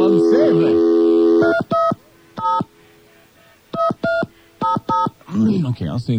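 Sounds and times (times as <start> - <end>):
speech: 0.1 - 1.6, 5.4 - 6.1
touch-tone beeps of a phone number being dialed: 1.4 - 2.7, 3.7 - 5.3.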